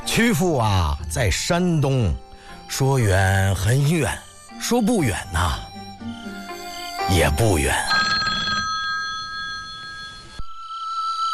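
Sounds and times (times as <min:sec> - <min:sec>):
speech: 0:00.2 - 0:05.7, 0:07.1 - 0:08.0
telephone ringing with electronic tone: 0:04.3 - 0:11.3.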